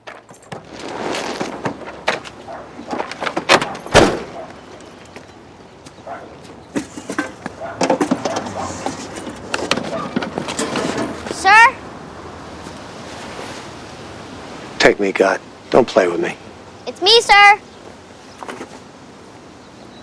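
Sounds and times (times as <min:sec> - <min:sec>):
car crunching and clattering over a fallen picket fence: 0:00.0 - 0:05.4, 0:06.4 - 0:11.4
speech: 0:15.0 - 0:17.7.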